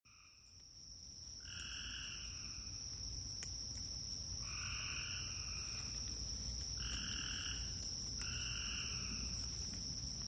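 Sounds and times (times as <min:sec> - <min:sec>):
steady high insect drone: 0:00.1 - 0:10.2
Cope's gray treefrog trilling in Maryland United States: 0:01.4 - 0:02.6, 0:04.4 - 0:05.9, 0:06.8 - 0:09.2.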